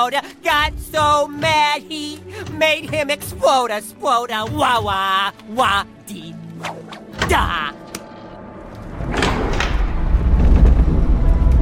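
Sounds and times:
speech: 0.0s - 7.8s
deep rumble: 8.1s - 11.6s
heavy trap door grinding open: 9.0s - 10.8s.

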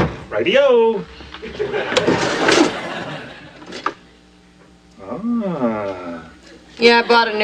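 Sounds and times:
speech: 0.4s - 2.6s, 5.1s - 7.4s
laughter: 1.4s - 3.8s
utensil drawer sliding open: 1.9s - 2.8s.

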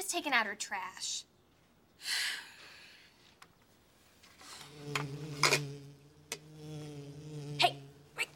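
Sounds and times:
speech: 0.1s - 1.3s, 2.0s - 2.4s, 4.8s - 5.6s
bee buzzing: 4.4s - 8.3s.

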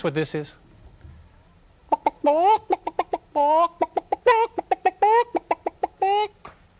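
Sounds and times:
speech: 0.0s - 0.7s, 2.2s - 2.6s, 3.4s - 4.5s
person imitating chicken clucking and squawking with their voice: 1.9s - 6.4s.

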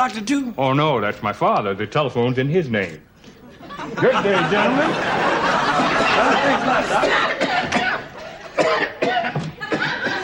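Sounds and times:
speech: 0.0s - 3.1s, 3.7s - 7.4s
laughter: 3.4s - 10.2s
man coughing: 7.0s - 8.0s, 8.6s - 10.2s.

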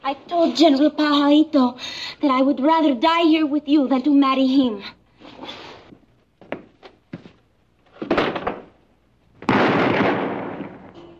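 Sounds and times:
speech: 0.1s - 5.6s
gunshots: 9.4s - 11.0s
loud heavy gunshot blast: 9.5s - 10.9s.

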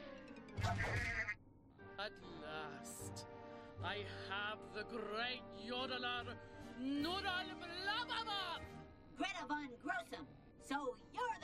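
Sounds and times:
sheep bleating: 0.6s - 1.4s
speech: 2.0s - 11.4s.

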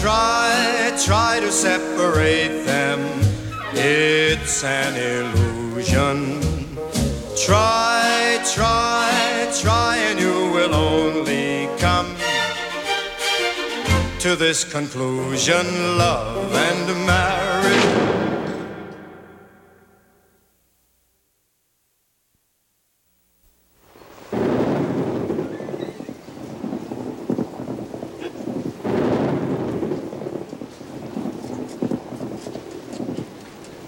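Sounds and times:
speech: 0.0s - 12.3s, 14.2s - 18.2s
deep rolling thunder: 0.0s - 12.6s, 15.4s - 19.9s, 24.2s - 33.8s
musical tone: 0.0s - 14.4s, 15.5s - 20.0s
loud downpour of heavy rain: 0.0s - 19.4s, 23.8s - 33.8s.

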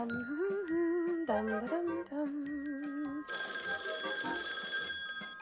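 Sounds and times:
melodic cartoon-style sounds: 0.1s - 4.4s
telephone bell ringing: 2.7s - 5.3s.

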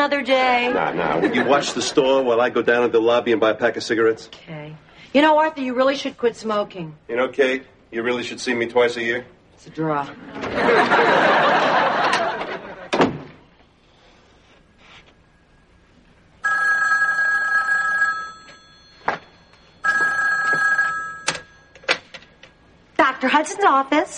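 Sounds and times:
speech: 0.0s - 11.7s, 23.7s - 24.1s
laughter: 0.6s - 2.2s, 10.2s - 13.0s
telephone ringing in a doctor's office: 16.4s - 22.8s.

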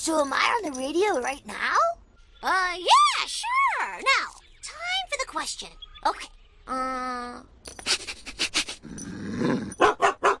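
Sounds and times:
speech: 0.0s - 4.4s, 5.3s - 8.0s
dog growling: 8.8s - 9.8s
dog barking loudly: 9.8s - 10.3s.

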